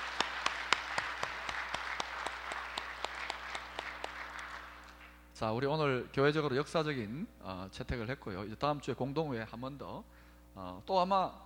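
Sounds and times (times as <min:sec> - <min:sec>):
church audience clapping: 0:00.0 - 0:05.2
speech: 0:05.4 - 0:11.4.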